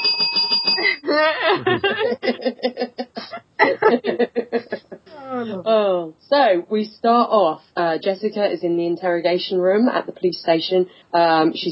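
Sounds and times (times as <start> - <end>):
small bell ringing: 0.0 - 1.0
snickering laughter: 0.0 - 5.3
speech: 1.1 - 3.0, 6.3 - 11.6.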